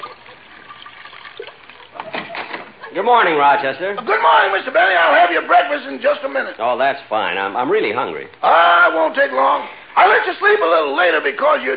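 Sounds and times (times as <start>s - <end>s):
cognac pouring into a shallow dish: 0.0s - 2.4s
speech: 3.0s - 11.7s.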